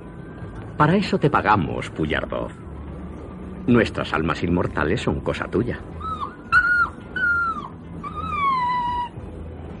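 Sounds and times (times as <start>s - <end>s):
speech: 0.8s - 2.6s, 3.7s - 6.1s
small dog whining fearfully on a train: 5.9s - 9.5s.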